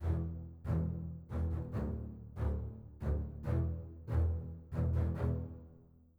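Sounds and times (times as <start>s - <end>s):
basses: 0.0s - 5.9s.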